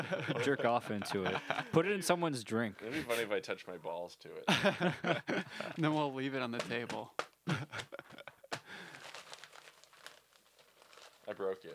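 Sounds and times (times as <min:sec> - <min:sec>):
laughter: 0:00.0 - 0:02.2, 0:02.8 - 0:03.3, 0:04.5 - 0:08.8
speech: 0:00.0 - 0:08.0, 0:11.3 - 0:11.7
hand slapping paper: 0:05.7 - 0:09.0
paper ripping and crinkling: 0:05.8 - 0:07.4, 0:08.5 - 0:11.7.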